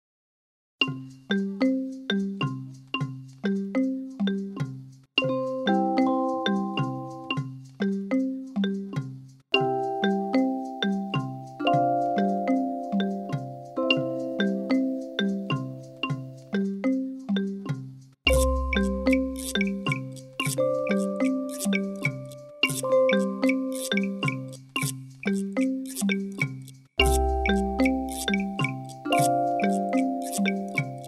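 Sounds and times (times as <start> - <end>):
4th grade instrumental mallet percussion: 0.8 - 31.0.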